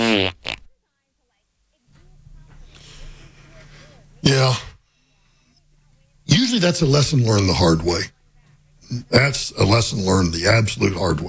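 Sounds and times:
loud buzzy fart sound effect: 0.0 - 0.7
low hum: 0.0 - 11.2
speech: 0.1 - 0.4, 4.2 - 4.7, 6.6 - 8.2, 8.9 - 11.2.

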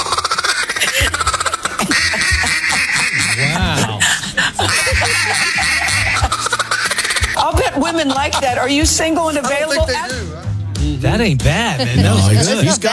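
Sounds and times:
man blowing a duck call with raspy quacks: 0.0 - 10.2
laughter: 0.0 - 12.9
speech: 7.9 - 12.9.

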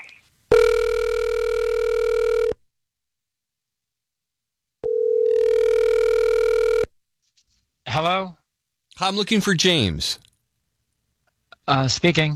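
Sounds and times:
ringback tones of an outgoing phone call: 0.5 - 2.6, 4.8 - 6.9
speech: 8.0 - 8.4, 9.0 - 10.2, 11.7 - 12.3.

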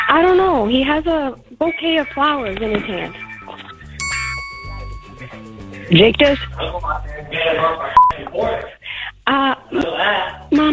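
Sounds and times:
speech: 0.1 - 3.3, 5.2 - 10.7
doorbell chiming: 3.2 - 5.8.

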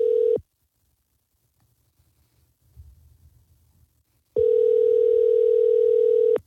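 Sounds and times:
telephone ringback tone on an outgoing call: 0.0 - 0.4, 4.4 - 6.4.

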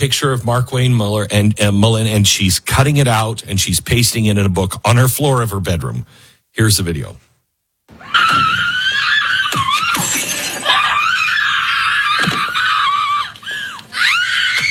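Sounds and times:
speech: 0.0 - 7.2
loud sustained scream with wavering pitch: 7.9 - 14.6.

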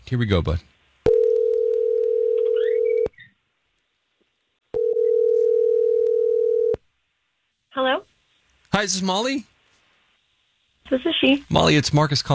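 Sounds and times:
speech: 0.1 - 0.7, 8.8 - 9.5, 10.9 - 12.3
telephone ringing tone of outgoing call: 1.1 - 3.1, 4.7 - 6.8.

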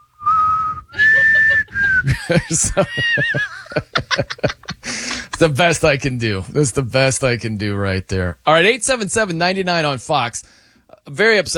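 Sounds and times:
person whistling a wobbly off-key tune: 0.0 - 2.2
snickering laughter with breathy bursts: 0.9 - 5.6
speech: 2.0 - 4.5, 5.4 - 11.5.

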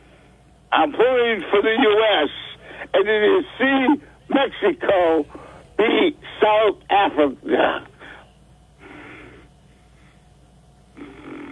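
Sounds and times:
speech: 0.7 - 7.9
heavy breathing into microphone: 2.5 - 3.0, 5.3 - 5.8, 8.0 - 10.4.

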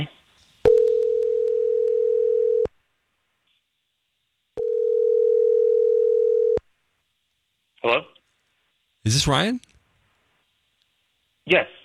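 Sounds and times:
outgoing phone call electronic ring tones: 0.7 - 2.7, 4.6 - 6.6
speech: 9.0 - 9.7, 11.5 - 11.8.

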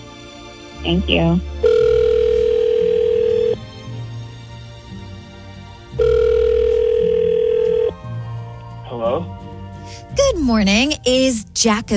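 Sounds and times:
speech: 0.8 - 1.8, 10.5 - 11.9
telephone ringback tone: 1.6 - 3.6, 6.0 - 8.0.

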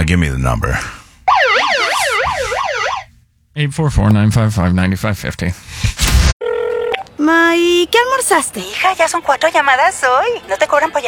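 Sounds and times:
speech: 0.1 - 1.0, 3.6 - 6.0, 7.3 - 11.0
loud electronic siren yelping in a rapid up-and-down warble: 1.3 - 3.1.

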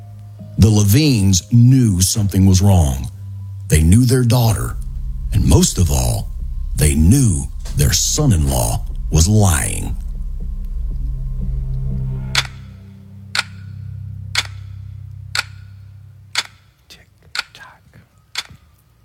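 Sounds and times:
low droning hum: 0.0 - 16.8
speech: 0.6 - 10.0
clock ticking sound effect: 3.7 - 12.7, 13.3 - 13.7, 14.3 - 14.7, 15.3 - 17.7, 18.3 - 18.6.

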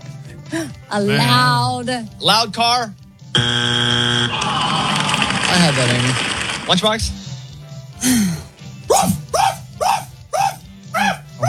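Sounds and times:
speech: 0.5 - 4.4, 5.6 - 7.2, 8.0 - 9.2
dog barking loud and sharp: 8.9 - 11.4.

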